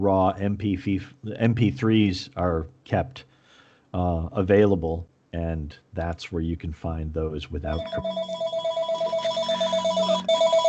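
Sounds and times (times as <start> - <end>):
speech: 0.0 - 3.3, 3.9 - 8.4
home telephone ringing with warbling electronic trill: 7.8 - 10.6.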